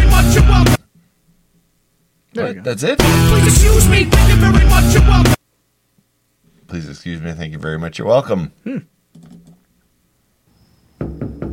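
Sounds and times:
speech: 0:02.4 - 0:05.4, 0:06.7 - 0:09.4
soft raps and heavy knocks on a door: 0:11.0 - 0:11.5.

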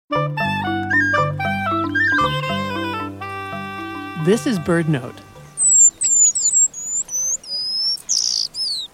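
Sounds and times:
eastern paradise whydah song, a small East African finch: 0:00.6 - 0:02.6, 0:05.3 - 0:08.9
speech: 0:04.2 - 0:05.2.

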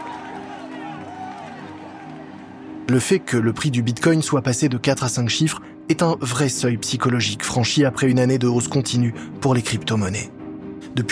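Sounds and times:
scattered clapping by employees: 0:00.0 - 0:02.4
crowd of employees cheering: 0:00.0 - 0:03.3
speech: 0:02.9 - 0:11.1.

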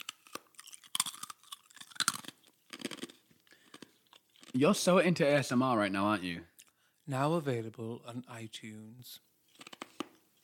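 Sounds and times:
person crunching and chewing on ice: 0:00.0 - 0:04.6
wet chewing clicks: 0:00.0 - 0:04.6, 0:09.5 - 0:10.4
speech: 0:04.6 - 0:06.5, 0:07.1 - 0:09.3.

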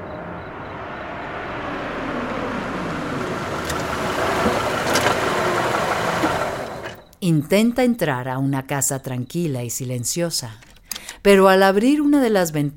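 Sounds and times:
Toyota car engine running: 0:00.0 - 0:07.0
speech: 0:07.2 - 0:12.7.

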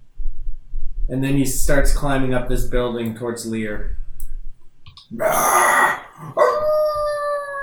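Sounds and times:
speech: 0:01.1 - 0:04.0, 0:05.1 - 0:06.4
rough breathy growl: 0:05.1 - 0:06.4
long howls: 0:05.2 - 0:07.6.

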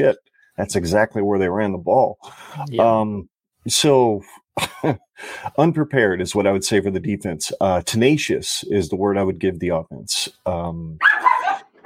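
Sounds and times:
speech: 0:00.0 - 0:11.3
low hum of a voice: 0:02.6 - 0:03.2
dog barking excitedly: 0:11.0 - 0:11.8.

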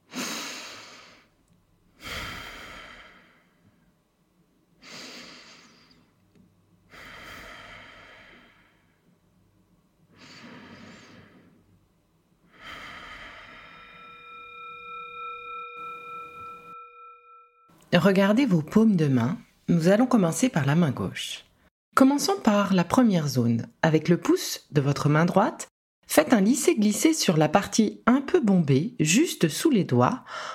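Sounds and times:
big deep breaths, slow loud inhale and exhale: 0:02.0 - 0:03.9, 0:04.8 - 0:06.2, 0:06.9 - 0:09.1, 0:10.1 - 0:11.8, 0:12.4 - 0:14.4, 0:30.2 - 0:30.5
steady ringing tone: 0:12.9 - 0:17.8
speech: 0:17.9 - 0:30.5.

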